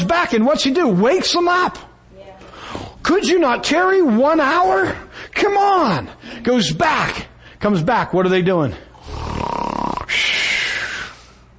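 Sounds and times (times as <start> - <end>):
speech: 0.1 - 1.9, 3.0 - 9.2
man imitating a snore: 9.0 - 10.6.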